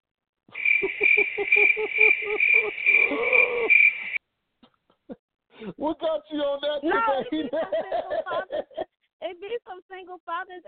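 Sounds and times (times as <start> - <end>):
crickets chirping in a steady shrill trill: 0.5 - 4.2
rapid lower pulsing calls: 0.5 - 4.2
laughter: 0.6 - 4.0, 6.9 - 8.9
speech: 6.1 - 8.7, 9.4 - 10.6.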